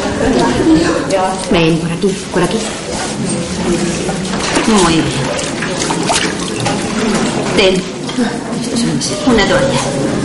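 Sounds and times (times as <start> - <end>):
speech: 0.7 - 6.4, 7.0 - 10.2
water running from a tap at a public washbasin: 4.0 - 7.9.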